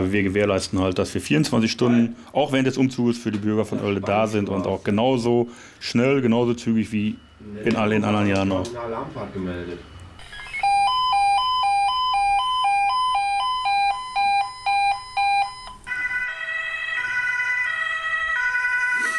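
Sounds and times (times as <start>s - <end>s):
speech: 0.0s - 9.9s
noise: 0.0s - 19.1s
fire station dispatch two-tone electronic alarm for ambulance: 9.8s - 19.1s.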